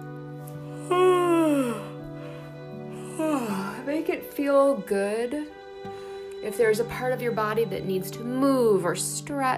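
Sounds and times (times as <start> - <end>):
person yawning: 0.8 - 2.0
speech: 4.1 - 9.5.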